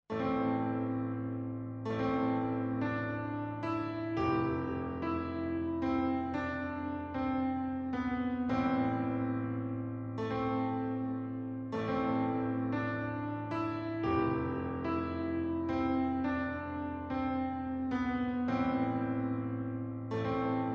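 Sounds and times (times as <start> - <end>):
ambient piano: 0.1 - 20.7.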